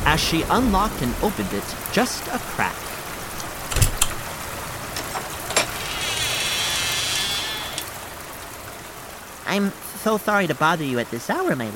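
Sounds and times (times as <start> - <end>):
low rumble of thunder: 0.0 - 5.9
heavy rain during a nighttime thunderstorm: 0.0 - 11.7
speech: 0.1 - 3.0, 9.5 - 11.7.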